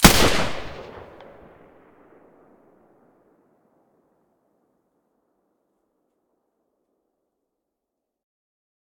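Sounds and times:
suppressed G36 rifle shots: 0.0 - 2.6.

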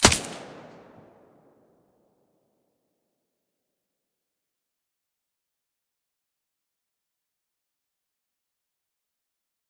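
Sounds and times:
AUG rifle with silencer firing: 0.0 - 1.2.

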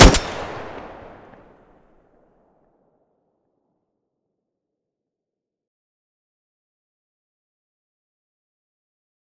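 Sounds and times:
Groza rifle muzzle gunshot: 0.0 - 1.4.

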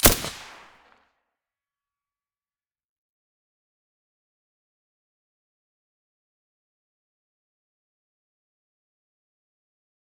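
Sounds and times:
VSS silenced rifle gunshot: 0.0 - 0.8.

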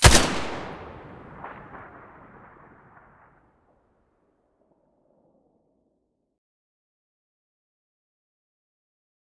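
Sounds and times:
SCAR rifle muzzle blast: 0.0 - 2.7.

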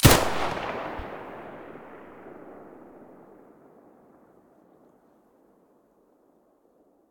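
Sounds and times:
MP9 gun muzzle blast: 0.0 - 3.3.

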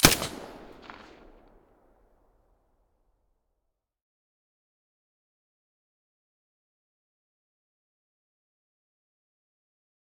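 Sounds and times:
silenced MP5 submachine gun shots: 0.0 - 1.4.

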